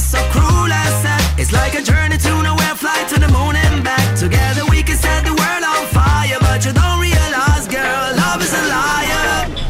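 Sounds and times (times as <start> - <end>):
sung pop melody: 0.0 - 9.6
speech: 1.4 - 4.4.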